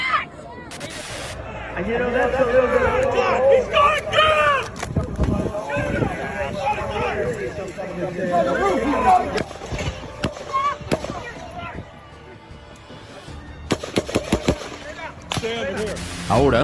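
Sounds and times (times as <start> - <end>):
crowd murmuring: 0.0 - 16.6
voices and commotion: 0.0 - 16.6
sharp gunshots fired in a crowd: 13.7 - 15.5.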